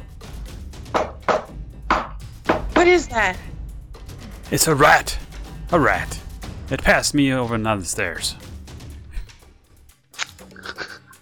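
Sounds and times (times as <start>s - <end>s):
loud sharp knocking: 0.9s - 3.1s
speech: 2.8s - 3.5s, 4.5s - 8.4s.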